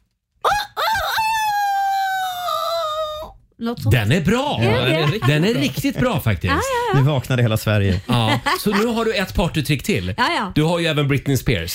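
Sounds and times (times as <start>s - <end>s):
person imitating a rooster crowing: 0.4s - 3.3s
speech: 3.6s - 11.7s
laughter: 4.5s - 9.4s.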